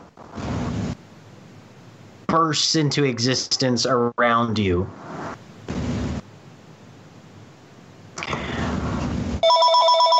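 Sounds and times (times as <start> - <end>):
bursts of rushing noise: 0.0 - 1.0, 4.9 - 6.2
speech: 2.3 - 5.0
phone ringing during a tabletop roleplaying game session: 9.4 - 10.1.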